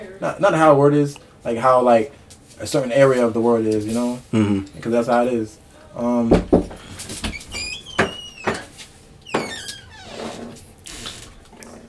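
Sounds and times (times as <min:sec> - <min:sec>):
speech: 0:00.2 - 0:06.8
door being kicked open: 0:06.3 - 0:11.4
door hinges creaking with high squeals: 0:06.3 - 0:11.6.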